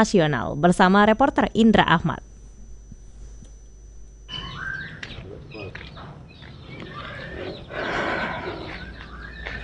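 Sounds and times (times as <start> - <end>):
speech: 0.0 - 2.3
white-rumped shama singing at a breeding farm in Lampung Indonesia: 4.3 - 9.6.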